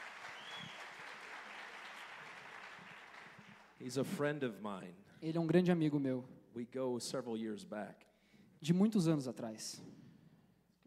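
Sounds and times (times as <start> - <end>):
crowd clapping for a pastor: 0.0 - 4.0
speech: 3.8 - 10.0.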